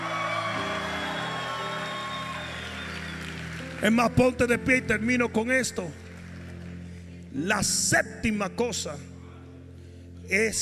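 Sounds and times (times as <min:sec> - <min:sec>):
whoops from the audience: 0:00.0 - 0:03.6
audience shouting and cheering in praise: 0:00.0 - 0:03.7
speech: 0:03.8 - 0:06.0, 0:07.3 - 0:09.1, 0:10.3 - 0:10.5.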